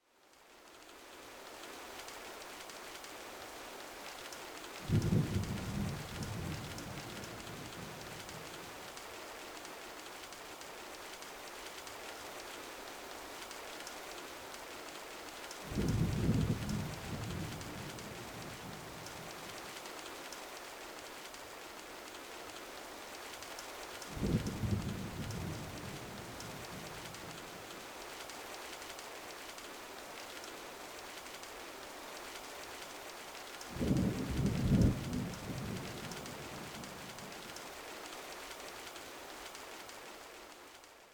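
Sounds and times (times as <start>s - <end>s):
rain: 0.0s - 41.1s
thunder: 4.9s - 7.2s, 15.7s - 18.0s, 24.2s - 25.8s, 33.8s - 37.1s.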